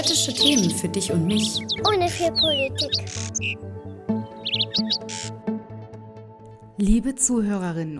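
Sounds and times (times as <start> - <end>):
speech: 0.0 - 3.8, 6.8 - 7.9
steady rhythmic music bed: 0.0 - 3.8
high bird chirps: 0.0 - 5.4.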